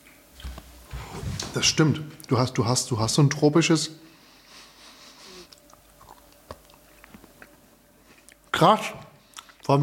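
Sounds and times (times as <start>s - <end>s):
speech: 1.5s - 4.0s, 8.6s - 9.0s, 9.7s - 9.8s
person chewing cheese: 5.2s - 8.5s, 9.2s - 9.7s.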